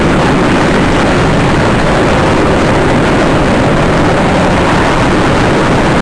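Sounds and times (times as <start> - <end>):
supersonic plane: 0.0 - 5.9.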